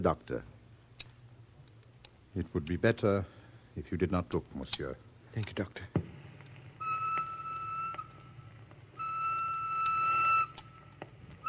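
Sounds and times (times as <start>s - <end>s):
speech: 0.0s - 0.5s, 2.4s - 6.0s
low continuous rumble: 0.0s - 11.4s
train whistle blasts: 6.8s - 8.2s, 9.0s - 10.8s.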